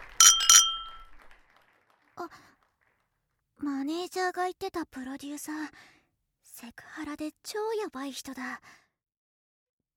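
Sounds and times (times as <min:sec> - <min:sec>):
glasses clinking in a toast at a drinking party: 0:00.0 - 0:01.1
speech: 0:02.2 - 0:02.5, 0:03.6 - 0:06.0, 0:06.6 - 0:08.8.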